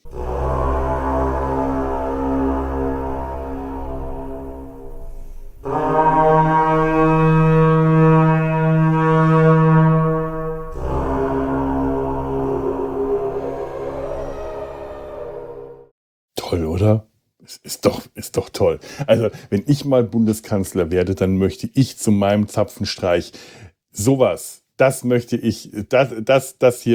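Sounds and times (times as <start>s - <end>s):
Iron Age carnyx war horn blown in battle: 0.0s - 15.9s
speech: 18.6s - 26.9s.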